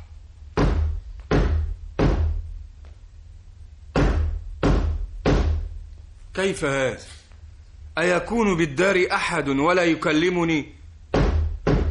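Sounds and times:
heavy knocking on the door of a house: 0.5s - 2.5s, 3.9s - 5.7s, 11.1s - 11.8s
speech: 6.4s - 7.2s, 8.0s - 10.8s.

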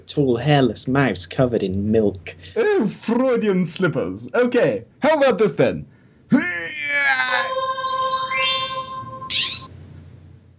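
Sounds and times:
speech: 0.1s - 7.2s
person's voice imitating a Californian scrub jay call: 6.8s - 9.7s.

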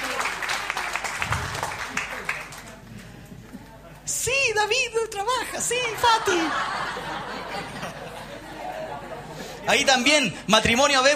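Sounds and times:
gathered crowd applauding: 0.0s - 3.1s
speech: 4.6s - 7.9s, 9.6s - 11.1s
laughter: 5.8s - 9.9s.

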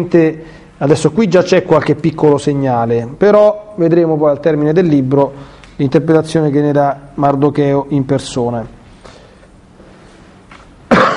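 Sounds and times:
speech: 0.0s - 8.8s
faint breath: 8.9s - 9.5s
person coughing from bitter cold: 10.9s - 11.1s.

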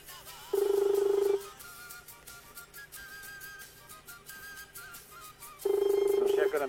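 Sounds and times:
telephone ringback tone on a call to a municipal office: 0.5s - 1.6s, 5.6s - 6.6s.

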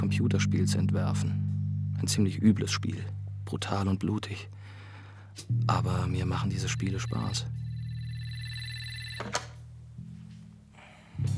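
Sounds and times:
speech: 0.1s - 4.6s, 5.4s - 7.6s
telephone ringing with a bright electronic tone: 6.7s - 9.6s.

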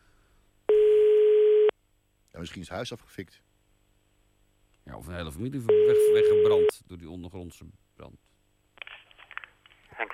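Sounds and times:
telephone ringback tone while placing a call: 0.7s - 1.7s
speech: 2.4s - 3.5s, 4.9s - 8.3s.

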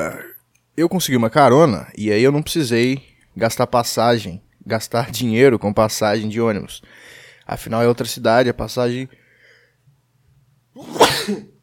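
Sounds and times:
speech: 0.8s - 9.2s, 10.8s - 11.5s
sneeze: 10.8s - 11.6s.

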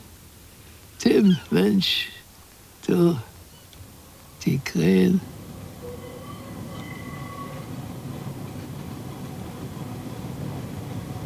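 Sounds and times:
speech: 1.0s - 2.2s, 2.9s - 3.3s, 4.4s - 5.3s
tram rattling through a city in November: 2.6s - 11.2s
thin squealing tones of a tram: 5.7s - 7.8s.

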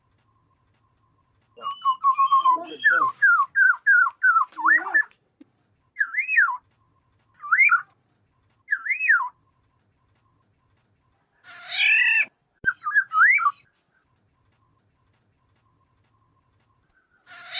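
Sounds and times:
black-naped oriole song of clear slurred whistles and fluty phrases: 0.2s - 5.1s, 6.0s - 6.7s, 7.3s - 7.9s, 8.7s - 9.4s, 12.6s - 13.7s.

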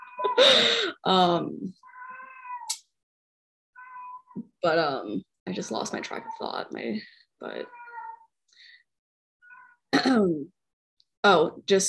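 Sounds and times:
speech: 0.4s - 1.8s, 4.6s - 7.8s, 9.9s - 10.6s, 11.2s - 11.8s
cat yowling inside a house: 1.8s - 2.7s, 3.8s - 4.3s, 7.7s - 8.2s.

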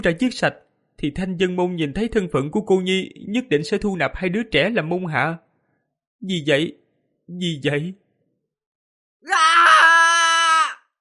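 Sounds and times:
speech: 0.0s - 5.4s, 6.2s - 8.0s
man screaming furiously: 9.2s - 10.9s.

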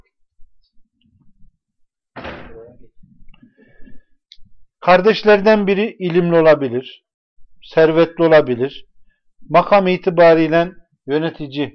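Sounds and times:
door slamming shut: 2.2s - 2.8s
speech: 2.8s - 4.1s, 4.8s - 7.0s, 7.6s - 11.7s.

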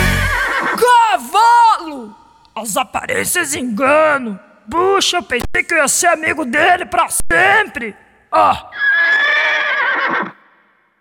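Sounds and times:
horse neighing: 0.2s - 0.8s, 8.6s - 10.4s
speech: 2.6s - 9.2s.

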